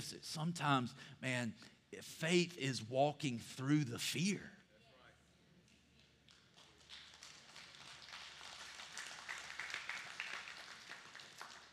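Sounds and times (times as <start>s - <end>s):
speech: 0.0s - 4.6s
church audience clapping: 6.0s - 11.7s.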